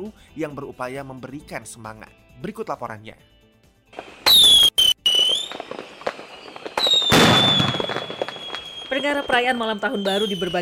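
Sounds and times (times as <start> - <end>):
speech: 0.0 - 4.1, 9.0 - 10.6
fireworks rockets whistling and shrieking upward: 4.0 - 10.6.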